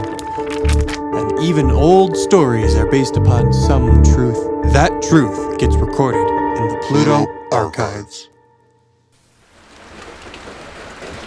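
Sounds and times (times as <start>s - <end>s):
speech: 1.4s - 8.3s
light rain pattering on the roof of an old dilapidated house: 9.2s - 11.2s.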